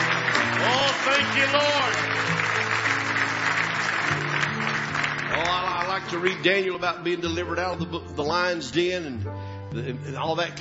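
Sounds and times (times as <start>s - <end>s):
congregation clapping hands in praise during a church service: 0.0s - 6.8s
speech: 1.1s - 2.2s, 6.0s - 10.5s.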